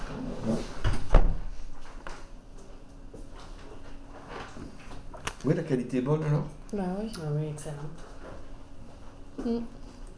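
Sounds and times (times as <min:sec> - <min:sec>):
door swinging and shutting with a solid thud: 0:00.8 - 0:01.5
speech: 0:05.4 - 0:08.1, 0:09.4 - 0:09.8.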